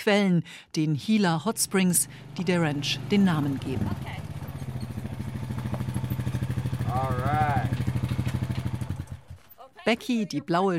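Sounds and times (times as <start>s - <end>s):
speech: 0.0s - 4.2s, 9.9s - 10.7s
quad bike engine rattling across a dusty yard: 1.5s - 10.1s.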